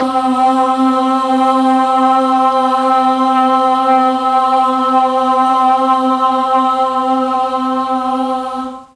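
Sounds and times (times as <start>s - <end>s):
mellotron boys choir sound at C2: 0.0s - 8.9s.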